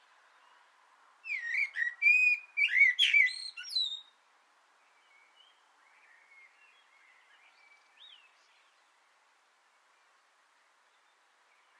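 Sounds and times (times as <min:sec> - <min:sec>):
common blackbird singing from an antenna: 0:00.0 - 0:09.0, 0:09.6 - 0:11.7.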